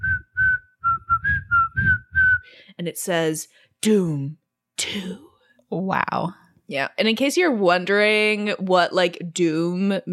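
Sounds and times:
whistled movie theme tune: 0.0 - 2.5
speech: 2.8 - 10.1.

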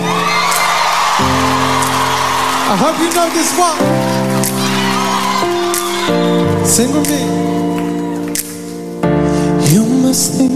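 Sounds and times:
concert crowd cheering and whooping: 0.0 - 8.7
speech: 2.7 - 4.2, 6.6 - 7.8, 9.7 - 10.5.

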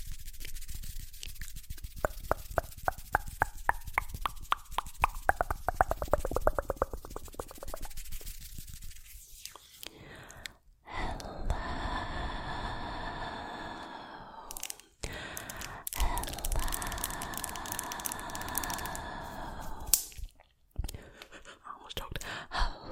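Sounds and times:
breathy airy mouth sounds: 2.0 - 8.0, 9.4 - 22.9
wet mouth clicks and pops: 2.0 - 8.0, 14.5 - 19.2, 19.8 - 21.0.

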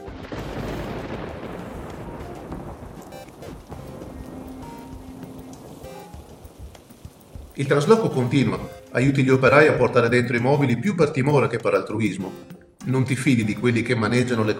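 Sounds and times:
heavy rain pouring and pattering on surfaces: 0.0 - 10.0
speech: 7.6 - 14.5.

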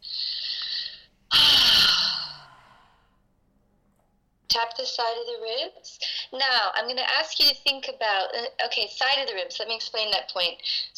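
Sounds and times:
big deep breath during an emotional-release tapping exercise: 0.0 - 3.3
speech: 4.6 - 10.9.

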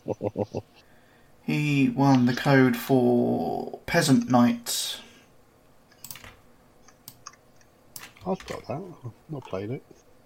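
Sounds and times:
speech: 0.1 - 0.8, 1.5 - 5.0, 8.2 - 10.0
keyboard typing: 5.9 - 7.4.

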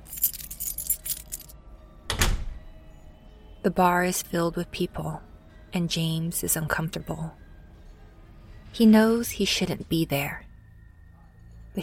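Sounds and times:
keys jangling in a bright metallic rattle: 0.0 - 1.6
door being shut and locked with a solid thunk: 2.0 - 2.6
speech: 3.6 - 7.4, 8.7 - 10.5.

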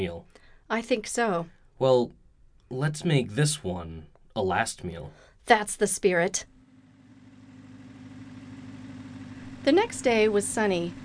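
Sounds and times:
speech: 0.0 - 6.5, 9.6 - 11.0
old beat-up rusty Model T car engine idling: 6.6 - 11.0.

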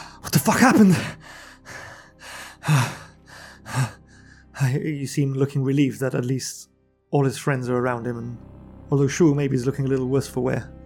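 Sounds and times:
speech: 0.4 - 1.2, 2.7 - 3.0, 4.6 - 10.8
person gasping for air: 0.9 - 4.6.

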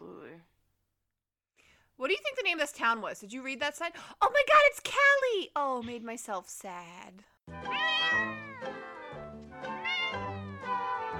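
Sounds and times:
speech: 2.0 - 8.3
cat meowing: 7.7 - 11.0.

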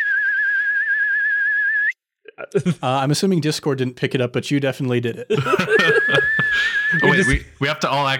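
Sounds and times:
person whistling a long steady note with vibrato: 0.0 - 2.0, 6.1 - 7.1
speech: 2.4 - 6.3, 6.9 - 8.1
laughter: 5.3 - 7.5.

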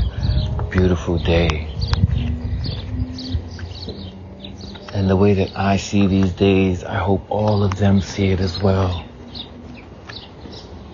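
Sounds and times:
bird chirps outdoors: 0.0 - 10.9
steady outdoor hum: 0.0 - 10.9
speech: 0.7 - 2.1, 5.0 - 9.1.

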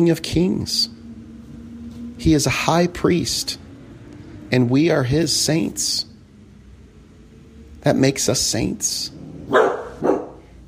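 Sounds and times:
speech: 0.0 - 1.0, 2.2 - 3.6, 4.5 - 6.1, 7.8 - 9.8
dog barking: 9.4 - 10.5.

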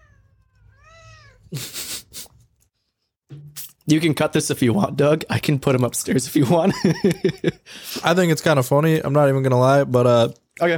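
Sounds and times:
cat meowing: 0.0 - 1.5
speech: 1.5 - 1.8, 3.9 - 10.7
laughter: 1.5 - 2.3, 6.6 - 7.6.

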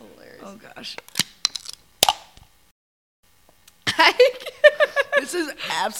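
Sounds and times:
speech: 0.4 - 1.3, 5.2 - 5.9
beer can puncture crack: 1.0 - 2.5
laughter: 3.8 - 5.9.

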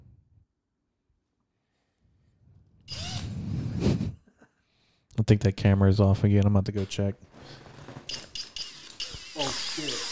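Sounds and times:
power drill whirring: 2.9 - 3.4, 7.6 - 10.1
speech: 5.2 - 7.7.

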